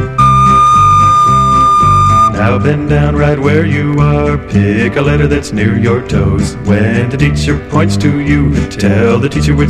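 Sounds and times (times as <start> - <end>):
loud sustained whistle blast: 0.2 - 2.4
speech: 2.6 - 9.6.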